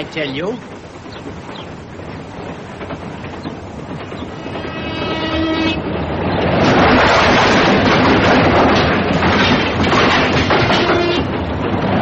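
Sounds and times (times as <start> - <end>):
speech: 0.0 - 1.7
train rolling along the rails: 0.0 - 12.0
train horn: 4.4 - 5.9, 10.6 - 11.3.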